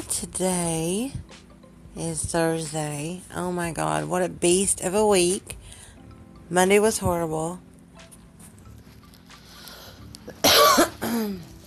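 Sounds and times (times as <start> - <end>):
speech: 0.2 - 1.4, 2.0 - 5.6, 6.5 - 7.7, 11.1 - 11.5
harsh coughs: 10.3 - 11.4.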